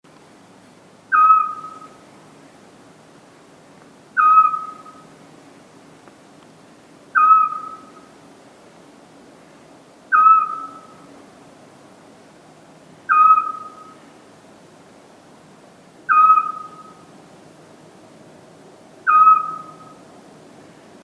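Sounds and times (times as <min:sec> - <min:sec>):
scops owl calling: 0:01.1 - 0:02.1, 0:04.2 - 0:05.2, 0:07.1 - 0:08.2, 0:10.1 - 0:11.2, 0:13.1 - 0:14.2, 0:16.0 - 0:17.2, 0:19.0 - 0:20.1.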